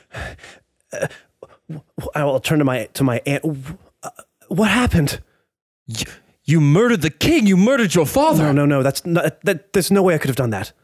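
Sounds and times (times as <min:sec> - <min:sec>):
heavy gasping breaths from a person close to the mic: 0:00.0 - 0:01.7
speech: 0:00.9 - 0:03.8, 0:04.5 - 0:05.3, 0:05.9 - 0:10.8.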